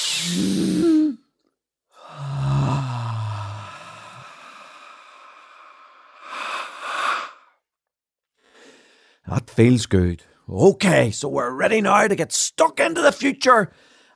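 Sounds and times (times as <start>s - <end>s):
speech: 0.2s - 1.0s, 9.4s - 14.1s
deep breaths drawn in through the nostrils: 2.0s - 7.6s, 8.4s - 9.2s.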